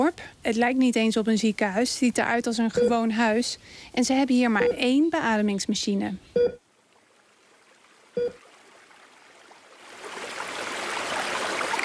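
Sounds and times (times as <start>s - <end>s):
speech: 0.1s - 6.6s, 8.2s - 8.4s
river water flowing at a village on the Darling River: 6.6s - 11.8s.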